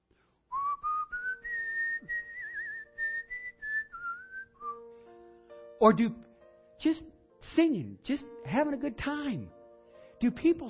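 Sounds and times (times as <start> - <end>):
person whistling a lively wavering tune: 0.5 - 5.0
speech: 5.8 - 6.2, 6.8 - 9.6, 10.2 - 10.6.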